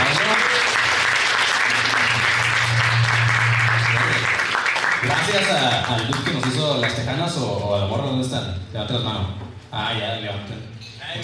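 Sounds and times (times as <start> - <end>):
live audience clapping: 0.0 - 7.4
low hum: 1.5 - 6.2
speech: 5.3 - 11.2.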